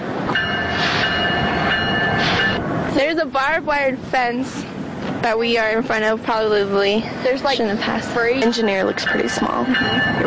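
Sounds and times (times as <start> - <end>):
train rolling along railroad tracks downtown: 0.0 - 10.2
high ringing squeal from passing train: 0.4 - 2.8, 8.1 - 10.2
speech: 3.2 - 10.2.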